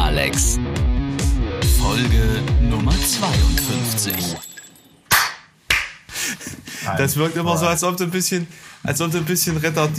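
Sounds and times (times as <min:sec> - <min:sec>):
speech: 0:00.2 - 0:00.7, 0:01.9 - 0:04.5, 0:06.8 - 0:09.9
sharp loud hand claps: 0:05.1 - 0:06.1.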